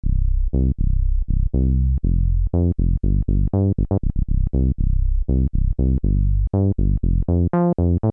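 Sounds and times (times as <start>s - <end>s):
Roland SH-201 synthesizer 24 dB low-pass filter: 0.0s - 8.0s.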